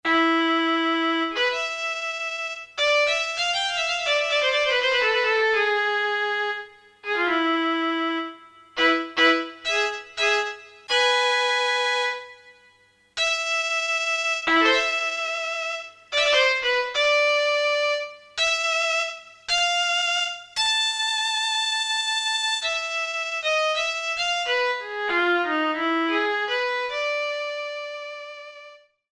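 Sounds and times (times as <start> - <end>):
violin: 0.1 - 28.9.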